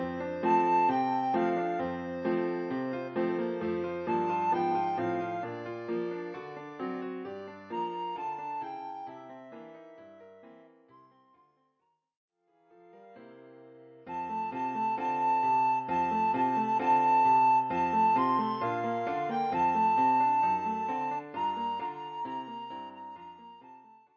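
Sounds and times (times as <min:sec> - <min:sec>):
recorder playing a Christmas carol: 0:00.1 - 0:09.9, 0:14.1 - 0:24.0.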